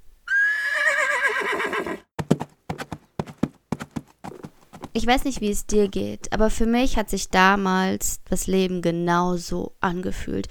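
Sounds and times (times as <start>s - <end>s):
horse neighing with a loud wavering whinny: 0.3s - 2.1s
horse hooves clip-clopping on a hard surface: 2.2s - 6.6s
speech: 5.0s - 10.4s.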